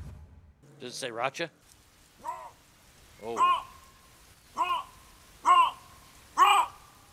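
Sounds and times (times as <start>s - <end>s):
speech: 0.8s - 2.4s, 3.2s - 3.7s
harsh wailing bobcat calls from a played recording: 2.2s - 2.6s, 3.2s - 7.1s.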